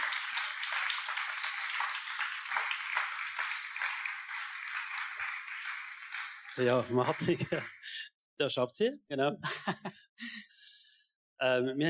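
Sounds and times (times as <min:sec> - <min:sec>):
stage audience applauding to welcome guests: 0:00.0 - 0:08.0
speech: 0:06.6 - 0:07.8, 0:08.4 - 0:10.4, 0:11.4 - 0:11.8
laughter: 0:06.6 - 0:08.0, 0:09.4 - 0:10.0.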